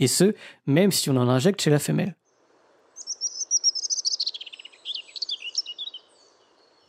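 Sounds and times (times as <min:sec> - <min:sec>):
speech: 0:00.0 - 0:02.2
European robin singing: 0:02.2 - 0:06.8.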